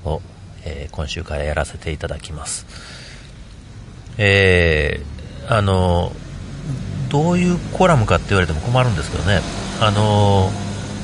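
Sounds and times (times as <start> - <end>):
car engine droning outside an apartment front yard: 0.0 - 11.0
quieter outdoor noise: 0.0 - 11.0
speech: 0.1 - 3.0, 4.2 - 10.6.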